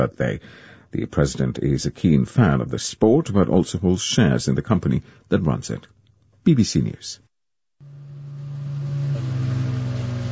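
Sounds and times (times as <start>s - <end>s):
speech: 0.0s - 7.2s
motorboat engine droning as the boat comes ashore on a desert island: 7.8s - 10.3s.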